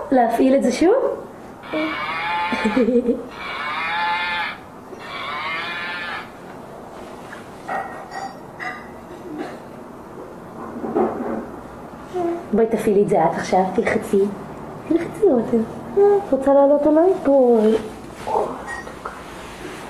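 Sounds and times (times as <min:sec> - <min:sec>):
speech: 0:00.1 - 0:03.5, 0:12.6 - 0:18.6
cow mooing: 0:01.6 - 0:06.4.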